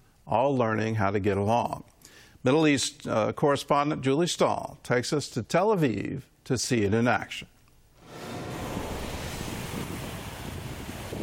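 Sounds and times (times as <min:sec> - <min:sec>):
speech: 0:00.3 - 0:07.5
Mediterranean Sea waves washing onto a beach in Tel Aviv Israel: 0:08.0 - 0:11.2
wind buffeting: 0:08.0 - 0:11.2.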